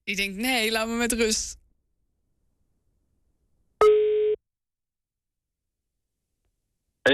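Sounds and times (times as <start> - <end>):
speech: 0.1 - 1.6
electronic phone call ringing tone: 3.8 - 4.4.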